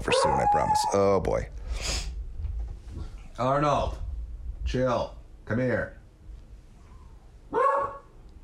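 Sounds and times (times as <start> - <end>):
speech: 0.3 - 2.0, 3.4 - 4.0, 4.7 - 6.0
dog barking: 7.5 - 8.2.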